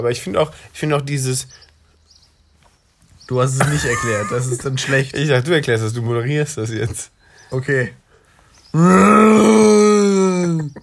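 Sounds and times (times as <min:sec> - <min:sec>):
speech: 0:00.0 - 0:01.7, 0:03.3 - 0:08.0, 0:08.7 - 0:09.6
laughter: 0:03.6 - 0:05.3
voice imitating a monster's low rough growl: 0:08.8 - 0:10.7.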